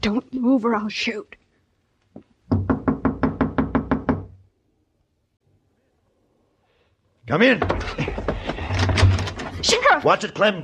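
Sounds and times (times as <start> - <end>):
speech: 0.0 - 1.4, 7.3 - 8.3, 9.6 - 10.6
loud knocks on a wooden door: 2.5 - 4.4, 7.6 - 9.5.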